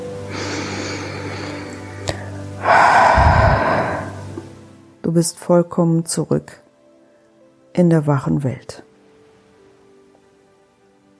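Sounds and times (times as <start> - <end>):
steady low drone: 0.0 - 4.6
deep breath during a guided meditation: 0.3 - 4.4
speech: 5.2 - 6.6, 7.8 - 8.8.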